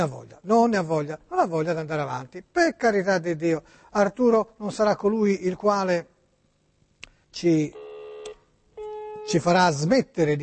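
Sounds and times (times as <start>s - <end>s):
speech: 0.0s - 6.1s, 7.3s - 7.8s, 9.2s - 10.4s
telephone ringing tone during an outgoing call: 7.8s - 9.3s.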